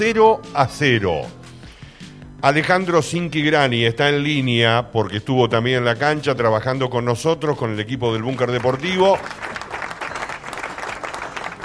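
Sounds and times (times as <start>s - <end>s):
speech: 0.0s - 1.4s, 2.4s - 9.5s
group of people applauding: 8.2s - 11.6s.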